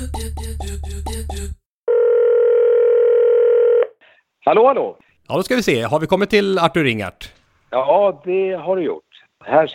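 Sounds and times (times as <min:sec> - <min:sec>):
telephone ringing tone while calling: 0:01.9 - 0:04.0
speech: 0:04.5 - 0:09.7.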